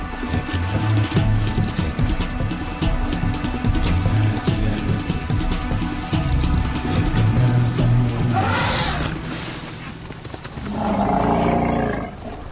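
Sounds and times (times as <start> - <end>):
approaching elephant rumbling and bellowing: 0.2 - 12.5.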